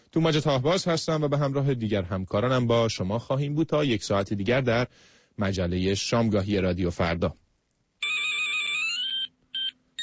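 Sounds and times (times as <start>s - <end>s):
speech: 0.1s - 7.4s
mobile phone ringtone: 8.0s - 10.0s.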